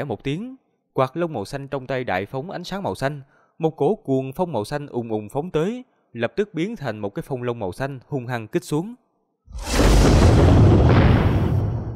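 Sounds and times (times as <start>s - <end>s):
speech: 0.0s - 10.9s
deep explosive boom with rumbling roar: 9.5s - 11.9s.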